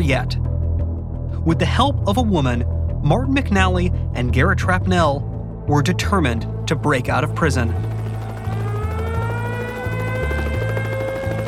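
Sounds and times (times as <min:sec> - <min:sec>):
speech: 0:00.0 - 0:00.5, 0:01.4 - 0:07.9
helicopter flying with engine whine and rotor throb: 0:06.3 - 0:11.4.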